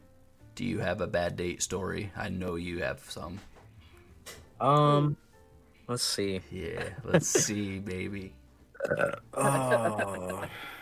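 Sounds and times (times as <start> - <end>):
speech: 0.6 - 3.5, 4.6 - 5.2, 5.9 - 10.7
laughter: 6.7 - 7.6, 9.4 - 10.6
loud deep rumbling burp: 8.8 - 10.6.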